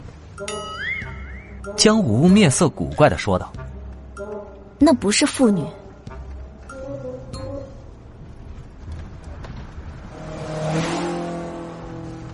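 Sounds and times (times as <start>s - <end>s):
speech: 0.4s - 3.7s, 4.8s - 5.8s
oddly shaped car engine roaring as it speeds past a truck: 7.9s - 12.3s.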